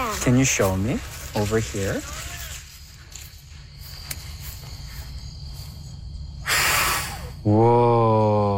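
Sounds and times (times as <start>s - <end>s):
speech: 0.2s - 2.3s, 7.4s - 7.9s
child blowing on a dandelion: 6.4s - 7.4s.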